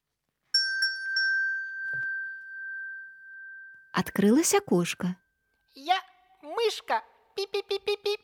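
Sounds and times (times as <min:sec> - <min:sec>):
small bell ringing: 0:00.5 - 0:05.9
speech: 0:04.0 - 0:05.2, 0:06.7 - 0:08.2.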